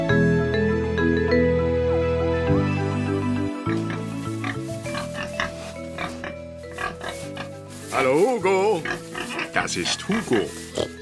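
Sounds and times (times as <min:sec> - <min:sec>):
steady music: 0:00.0 - 0:11.0
pig grunting: 0:03.7 - 0:11.0
speech: 0:08.0 - 0:09.0, 0:09.6 - 0:11.0.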